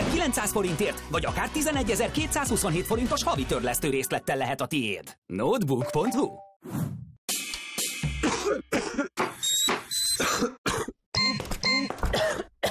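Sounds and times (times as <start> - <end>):
speech: 0.2 - 7.0, 8.5 - 10.5
harsh chesty coughs: 8.1 - 9.3, 10.2 - 11.0, 12.0 - 12.6
throat clearing: 8.2 - 9.3, 10.2 - 11.0, 11.9 - 12.6.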